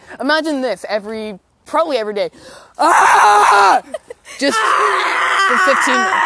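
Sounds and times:
speech: 0.2 - 6.2
person yelling loudly in strained wordless bursts: 2.8 - 3.8, 4.4 - 6.2.

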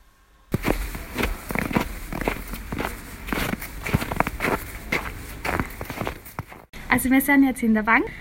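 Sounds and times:
footsteps walking outdoors through a village: 0.5 - 6.8
speech: 7.0 - 8.1.

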